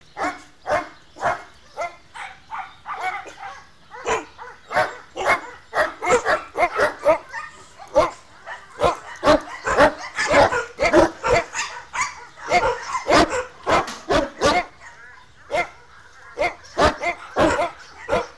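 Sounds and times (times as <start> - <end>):
dog barking: 0.2 - 18.3.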